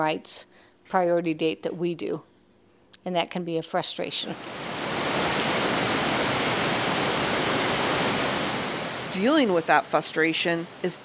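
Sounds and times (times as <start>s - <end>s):
speech: 0.0s - 2.3s, 3.0s - 4.8s, 9.2s - 11.0s
river water rushing: 4.4s - 11.0s.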